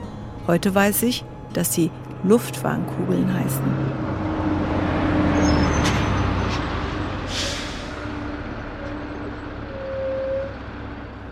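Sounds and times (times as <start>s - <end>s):
heavy coach bus engine rumbling: 0.0s - 11.3s
speech: 0.5s - 4.0s
short sharp hiss of bus air brakes: 7.2s - 8.2s.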